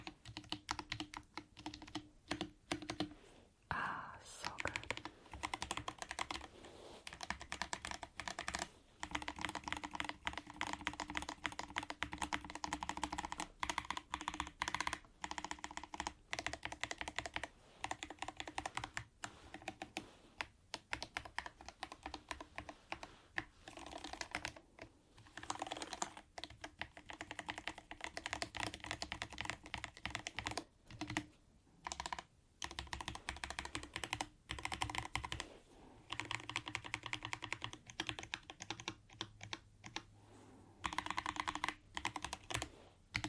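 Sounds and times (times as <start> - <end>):
rapid typing on a computer keyboard: 0.0 - 3.2, 4.5 - 35.5, 36.1 - 40.1, 40.8 - 43.2.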